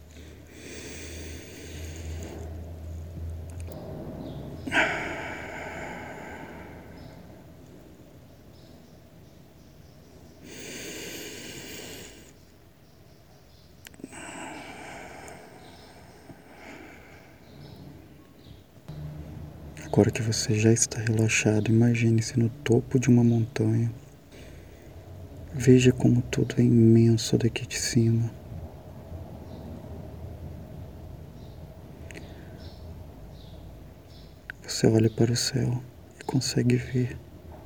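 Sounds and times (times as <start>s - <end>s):
slow deep breathing during a guided meditation: 0.0s - 2.9s, 4.6s - 8.0s, 10.0s - 13.0s, 13.8s - 18.7s, 24.2s - 25.3s, 32.0s - 32.8s
speech: 20.0s - 24.0s, 25.6s - 28.4s, 34.8s - 37.3s.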